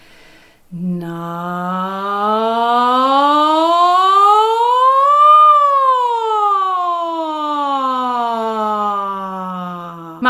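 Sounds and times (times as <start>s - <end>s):
speech: 0.7s - 1.8s
single voice singing a sustained ja imitating a siren as a vocal exercise: 0.7s - 10.2s.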